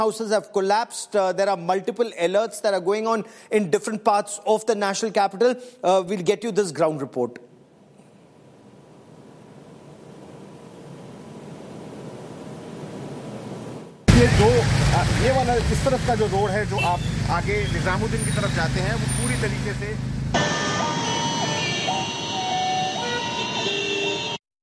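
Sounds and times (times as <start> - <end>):
speech: 0.0 - 7.5, 14.2 - 20.6
voices: 14.1 - 22.0
busy road traffic with engine rumble: 14.1 - 24.4
tonal horn-like sounds: 16.7 - 19.8, 20.4 - 24.4.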